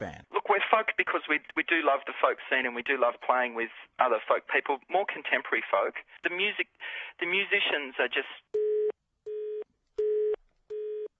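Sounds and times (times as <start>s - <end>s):
speech: 0.0s - 8.7s
telephone line electronic beeps: 8.6s - 11.1s.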